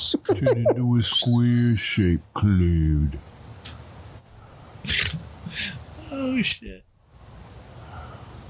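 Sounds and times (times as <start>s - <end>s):
laughter: 0.2s - 1.3s
speech: 0.3s - 3.4s, 6.1s - 6.9s
heavy breathing: 4.4s - 5.8s, 7.8s - 8.3s.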